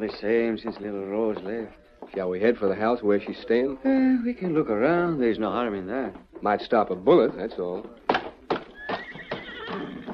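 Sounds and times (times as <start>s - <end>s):
speech: 0.0s - 8.0s
white horse neighing: 8.6s - 10.1s.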